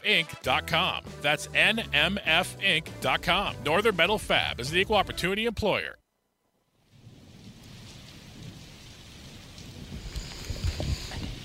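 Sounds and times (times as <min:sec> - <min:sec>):
speech: 0:00.0 - 0:06.0
steady rain: 0:06.8 - 0:11.4
low rumbling thunder: 0:07.0 - 0:11.4.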